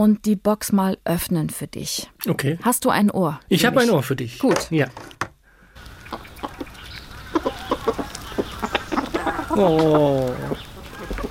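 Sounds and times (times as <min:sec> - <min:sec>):
speech: 0:00.0 - 0:05.2, 0:09.6 - 0:10.6
chickens clucking: 0:05.8 - 0:11.2.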